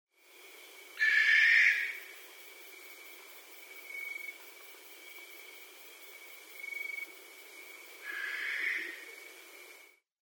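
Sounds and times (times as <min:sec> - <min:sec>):
barn owl: 0:01.0 - 0:02.0, 0:08.0 - 0:09.1.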